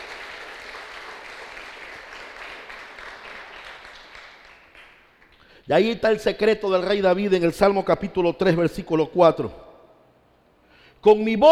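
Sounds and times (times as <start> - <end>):
congregation applauding at a church service: 0.0 - 5.5
speech: 5.7 - 9.6, 11.0 - 11.4.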